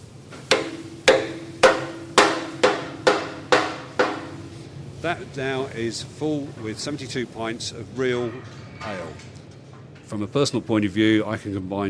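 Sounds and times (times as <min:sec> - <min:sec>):
hammer driving a wooden shive into a cask of real ale: 0:00.4 - 0:04.6
speech: 0:05.0 - 0:09.4, 0:10.1 - 0:11.8.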